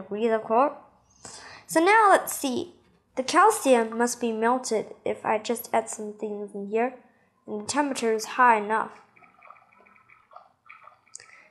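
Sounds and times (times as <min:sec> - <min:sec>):
speech: 0:00.0 - 0:09.0
water and water vapor bubbling out through a tube in a heated chemistry experiment with calcium: 0:09.0 - 0:11.4.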